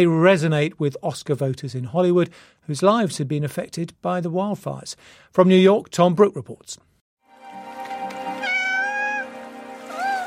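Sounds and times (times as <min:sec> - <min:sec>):
speech: 0:00.0 - 0:06.9
cat meowing in an animated film: 0:08.4 - 0:09.3, 0:09.9 - 0:10.2.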